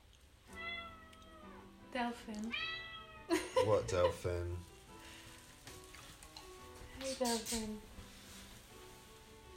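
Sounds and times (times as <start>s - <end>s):
cat meowing: 0.5s - 1.7s, 2.5s - 3.3s
speech: 1.9s - 4.7s, 7.0s - 8.0s.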